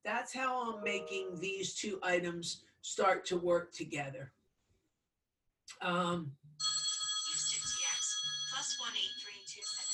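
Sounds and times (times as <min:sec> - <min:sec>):
speech: 0:00.0 - 0:04.4, 0:05.8 - 0:06.7
telephone ringing with a shrill trilling bell: 0:06.6 - 0:09.9.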